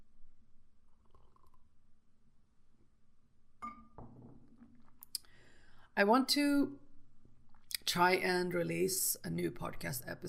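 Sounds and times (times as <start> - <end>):
slurping sip of coffee from a mug: 1.0 - 1.7
mug clinking as it is set down: 3.6 - 4.2
speech: 6.0 - 6.8, 7.9 - 10.2.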